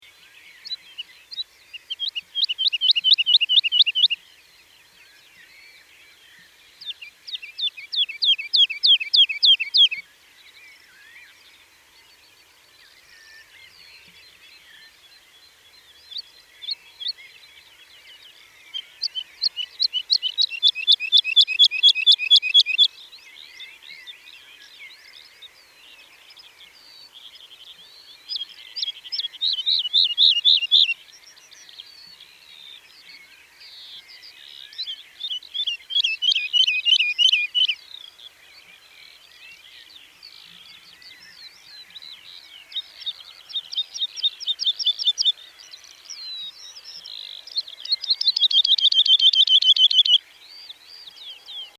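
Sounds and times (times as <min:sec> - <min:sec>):
woodlark singing: 0:00.8 - 0:04.2, 0:07.7 - 0:10.0, 0:18.8 - 0:23.0, 0:27.5 - 0:32.2, 0:34.2 - 0:38.8, 0:40.5 - 0:51.7.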